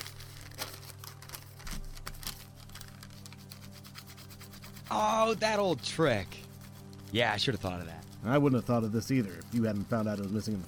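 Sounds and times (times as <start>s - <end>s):
low steady hum: 0.0s - 10.6s
pencil scratching and rubbing across a notebook page: 3.2s - 10.6s
speech: 4.9s - 6.4s, 7.1s - 10.6s.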